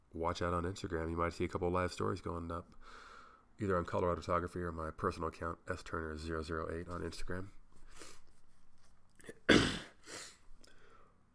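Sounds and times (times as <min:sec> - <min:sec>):
speech: 0:00.2 - 0:08.2
single sharp cough turned away from the microphone: 0:09.2 - 0:10.4.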